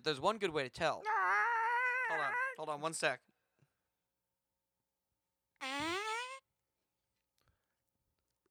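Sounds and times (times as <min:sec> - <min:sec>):
speech: 0:00.0 - 0:01.4, 0:02.1 - 0:03.3
fake fart sound effect: 0:05.6 - 0:06.5.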